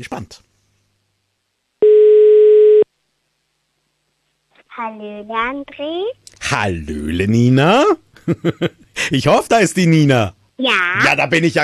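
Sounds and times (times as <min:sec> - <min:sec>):
speech: 0:00.0 - 0:00.5, 0:04.8 - 0:11.6
mid-pitched electronic telephone ringing tone: 0:01.8 - 0:02.9
laughter: 0:08.2 - 0:09.3.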